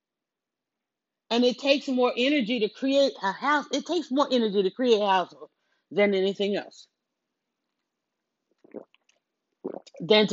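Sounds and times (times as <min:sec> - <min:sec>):
speech: 0:01.3 - 0:06.9, 0:09.7 - 0:10.3
sipping and swallowing lemonade: 0:08.5 - 0:10.1.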